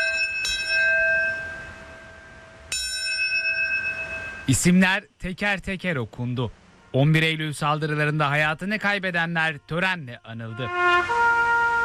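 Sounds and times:
large bell tolling at a September 11 memorial ceremony in the United States: 0.0 - 4.7
speech: 4.5 - 11.2.

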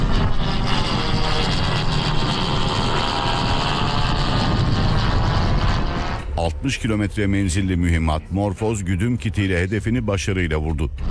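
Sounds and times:
propeller engine roar of armed drone taking off from runway: 0.0 - 8.6
speech: 6.6 - 11.0.

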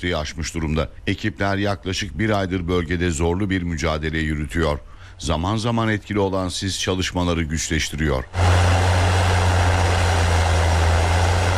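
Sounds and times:
speech: 0.0 - 8.7
heavy construction machinery clearing deep snow on a high mountain pass: 8.3 - 11.5.

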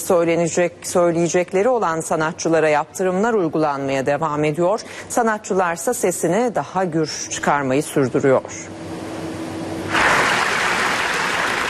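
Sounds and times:
speech: 0.0 - 8.8
film festival audience clapping in Venice: 9.9 - 11.6.

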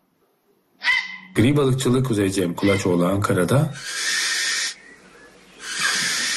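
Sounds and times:
speech: 1.4 - 4.3
barn owl in England giving a hissing screech: 2.6 - 2.9, 3.7 - 4.8, 5.6 - 6.3.

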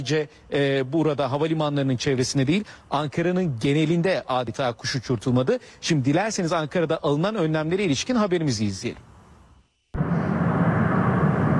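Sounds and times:
speech: 0.0 - 9.1
aircraft carrying leaders landing in Ankara: 10.0 - 11.5.

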